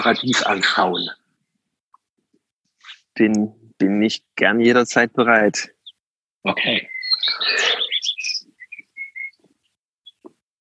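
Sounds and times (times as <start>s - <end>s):
speech: 0.0s - 1.2s, 3.2s - 5.8s, 6.4s - 7.7s
birds singing outdoors with warbles, chirps and whistled notes: 0.0s - 1.6s, 5.4s - 10.4s.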